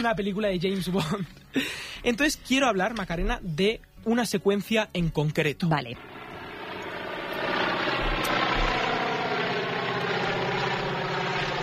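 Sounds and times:
speech: 0.0s - 6.1s
vintage propeller plane droning overhead: 6.0s - 11.6s.

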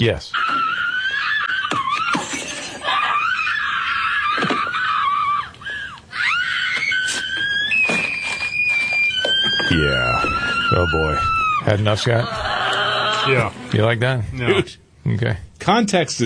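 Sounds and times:
speech: 0.0s - 0.6s, 9.7s - 12.5s, 13.2s - 16.2s
woman screaming: 0.4s - 13.4s.

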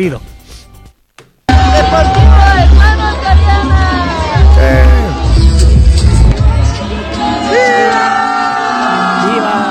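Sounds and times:
speech: 0.0s - 0.3s
large crowd at a sports club shouting and cheering: 1.5s - 9.6s.

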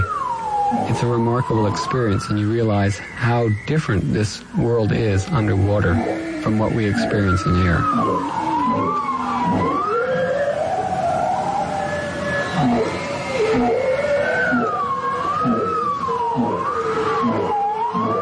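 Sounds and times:
lower short swooping bowhead whale notes underwater: 0.0s - 18.2s
steady underwater background noise under Arctic ice: 0.0s - 18.2s
speech: 1.0s - 9.8s
bowhead whale song moans recorded with hydrophones under Arctic ice: 4.8s - 10.1s, 12.4s - 18.2s.

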